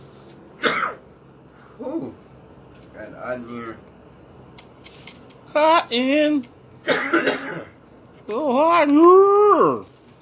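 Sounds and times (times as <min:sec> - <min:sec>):
person clearing throat: 0:00.6 - 0:01.0, 0:06.9 - 0:07.8
person coughing: 0:00.6 - 0:01.0, 0:06.9 - 0:07.8
speech: 0:03.2 - 0:03.9, 0:05.6 - 0:06.5, 0:08.3 - 0:09.9.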